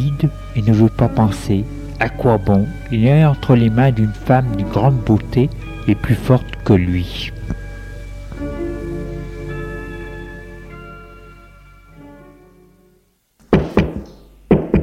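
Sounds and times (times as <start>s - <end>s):
speech: 0.0s - 7.6s
lingering resonant tone: 0.0s - 13.0s
knocking on a door: 13.5s - 14.8s.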